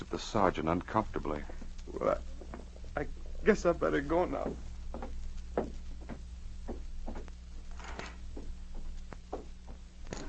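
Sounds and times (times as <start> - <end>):
steady low hum: 0.0 - 10.2
speech: 0.1 - 2.3, 3.0 - 5.7
door closing: 7.7 - 8.3, 10.1 - 10.2.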